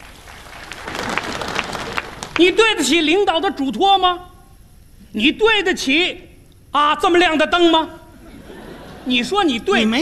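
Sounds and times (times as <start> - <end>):
audience applause at a live comedy stage show: 0.0 - 2.4
speech: 2.4 - 4.3, 5.2 - 8.0, 9.0 - 10.0
laughter: 8.2 - 10.0.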